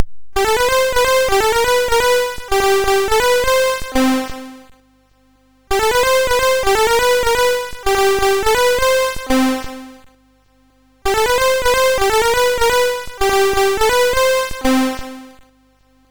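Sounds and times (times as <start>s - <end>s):
MOS6581R3 SID sound chip synthesizer: 0.4s - 4.2s, 5.7s - 9.4s, 11.1s - 14.8s.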